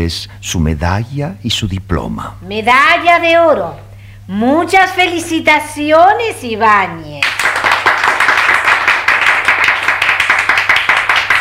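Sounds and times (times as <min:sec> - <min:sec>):
speech: 0:00.0 - 0:07.2
scattered half-hearted clapping from a small crowd: 0:07.2 - 0:11.4.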